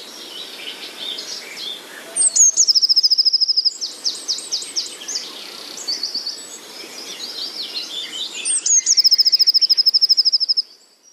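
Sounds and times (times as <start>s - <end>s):
Eurasian blue tit song: 0.0s - 11.1s
high chirps: 2.2s - 5.2s, 7.7s - 11.1s.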